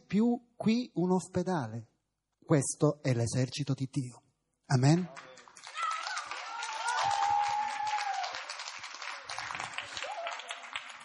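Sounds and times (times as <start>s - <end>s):
speech: 0.1s - 1.9s, 2.5s - 5.4s
large crowd applauding: 4.9s - 11.0s.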